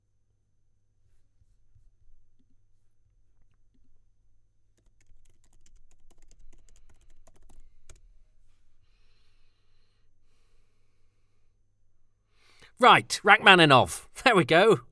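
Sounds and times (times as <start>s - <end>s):
rapid typing on a computer keyboard: 4.8s - 8.0s
speech: 12.8s - 14.9s.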